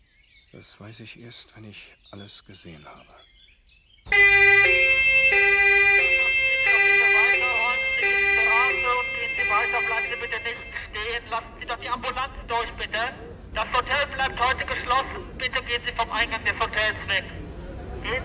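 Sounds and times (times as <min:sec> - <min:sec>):
speech: 0:00.5 - 0:03.3, 0:09.5 - 0:18.2
street bustle: 0:04.0 - 0:18.2
two-tone ambulance siren outside a hotel at an accident scene: 0:04.1 - 0:11.0.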